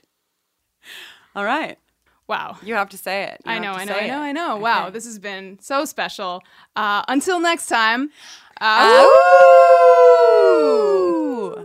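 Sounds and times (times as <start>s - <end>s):
speech: 0.8s - 11.6s
people howling like wolves: 8.8s - 11.6s.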